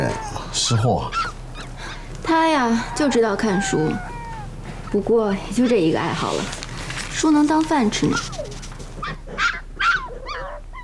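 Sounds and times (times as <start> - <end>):
speech: 0.0 - 1.3, 2.3 - 4.1, 4.9 - 6.6, 7.2 - 8.4
dog whimpering: 0.0 - 1.8, 2.6 - 6.4, 8.0 - 10.8
dog barking: 8.1 - 10.6.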